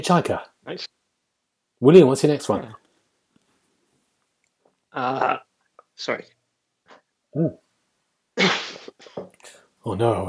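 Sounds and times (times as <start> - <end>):
speech: 0.0 - 1.0, 1.8 - 2.8, 5.0 - 6.4, 7.4 - 7.6, 8.4 - 10.2
person clearing throat: 8.4 - 9.3.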